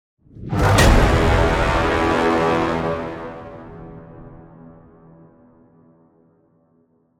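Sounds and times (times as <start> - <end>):
low end metallic synth brass braam impact: 0.5 - 5.8.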